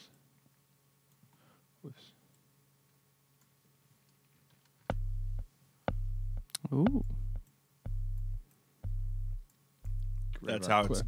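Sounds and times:
low pure synthesizer sine tone: 4.9s - 11.0s
speech: 6.7s - 7.2s, 10.5s - 11.0s.

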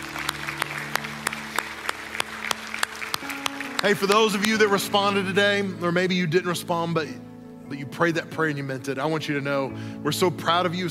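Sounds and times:
audience clapping in a steady even rhythm: 0.0s - 5.3s
speech: 3.8s - 10.8s.

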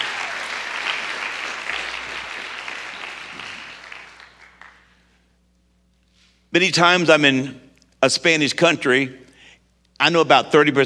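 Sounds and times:
crowd applause: 0.0s - 5.0s
speech: 6.5s - 9.2s, 10.0s - 10.8s.

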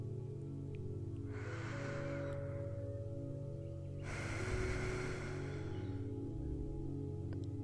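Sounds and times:
quiet steady musical drone: 0.0s - 7.6s
deep breath in during a mindfulness breathing exercise: 1.3s - 3.0s, 4.0s - 6.6s.

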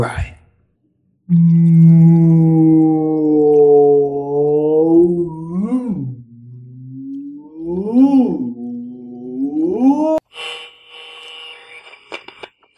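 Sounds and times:
speech: 0.0s - 0.3s, 1.3s - 2.3s
human voice imitating whale mating calls: 1.3s - 10.2s.

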